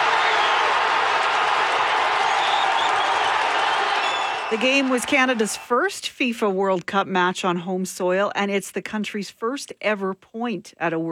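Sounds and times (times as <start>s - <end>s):
large fan crowd cheering and clapping after a goal: 0.0s - 5.9s
speech: 4.5s - 11.0s.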